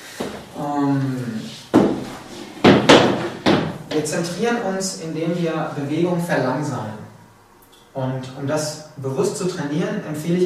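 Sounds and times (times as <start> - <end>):
speech: 0.6 - 1.6, 4.0 - 7.0, 8.0 - 10.4
wooden chair being picked up and moved, knocking and bumping: 1.7 - 4.1.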